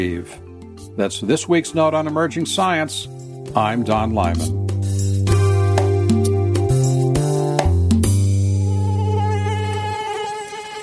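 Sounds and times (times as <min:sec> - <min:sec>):
speech: 0:00.0 - 0:04.6
mosquito buzzing: 0:05.3 - 0:10.8.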